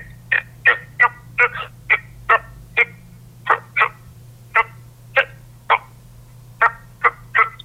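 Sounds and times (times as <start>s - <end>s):
faint low hum: 0.0s - 7.6s
common toad croaking: 0.3s - 5.9s, 6.6s - 7.6s.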